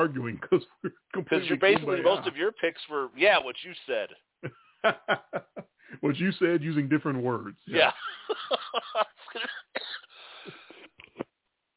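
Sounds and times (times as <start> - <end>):
speech: 0.0 - 9.5
laughter: 0.4 - 2.6, 4.4 - 6.1, 7.7 - 9.8
person coughing harshly: 8.4 - 10.8.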